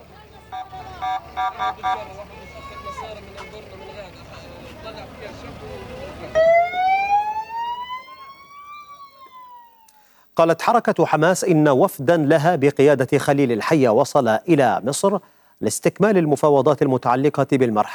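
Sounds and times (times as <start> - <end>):
voices murmuring: 0.0 - 9.8
ambulance and civil defense sirens at a drone strike site in Gaza City: 0.0 - 10.0
speech: 1.4 - 6.5, 10.4 - 17.9.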